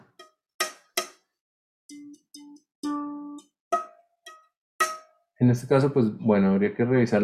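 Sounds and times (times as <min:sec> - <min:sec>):
plucked instrument string divided at its midpoint: 0:00.0 - 0:01.2, 0:01.9 - 0:06.1
speech: 0:05.4 - 0:07.2.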